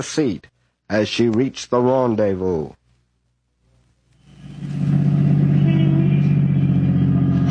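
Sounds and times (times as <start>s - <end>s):
speech: 0.0s - 2.8s
car engine idling while pulling into a parking space: 4.2s - 7.4s.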